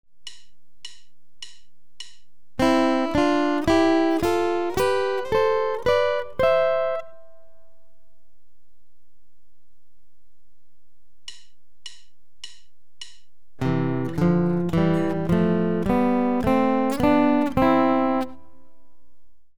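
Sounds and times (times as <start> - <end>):
guitar playing C-major double-stop scales: 2.6 - 7.8, 13.6 - 18.6.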